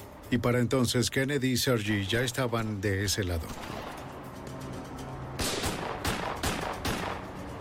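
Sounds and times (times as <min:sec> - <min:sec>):
speech: 0:00.3 - 0:03.9
gunshots fired at a police officer: 0:05.4 - 0:07.3.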